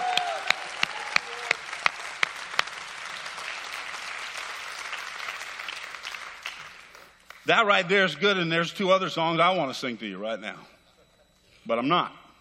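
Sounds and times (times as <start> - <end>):
large group clapping hands: 0.0 - 7.5
speech: 7.5 - 10.7, 11.7 - 12.2.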